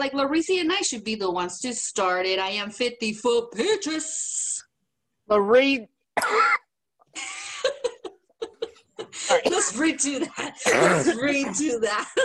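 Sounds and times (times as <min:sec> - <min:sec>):
speech: 0:00.0 - 0:04.4, 0:05.3 - 0:07.4, 0:09.3 - 0:12.2
person coughing from a tickle in the throat: 0:06.2 - 0:06.7, 0:09.3 - 0:11.6
people chuckling: 0:07.2 - 0:09.4.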